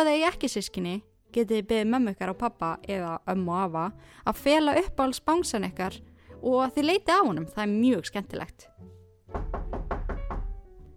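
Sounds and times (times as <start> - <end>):
speech: 0.0 - 9.6
visitor knocking on a wooden door: 9.3 - 10.9.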